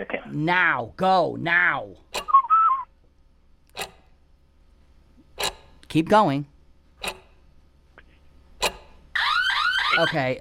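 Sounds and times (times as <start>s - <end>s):
speech: 0.0s - 2.0s, 5.9s - 7.2s, 10.0s - 10.3s
person lip whistling short wavering notes: 2.3s - 3.0s.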